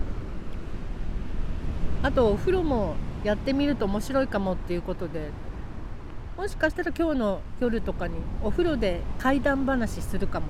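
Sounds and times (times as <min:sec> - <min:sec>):
ocean surf on a beach: 0:00.0 - 0:10.4
speech: 0:02.0 - 0:05.4, 0:06.4 - 0:10.4.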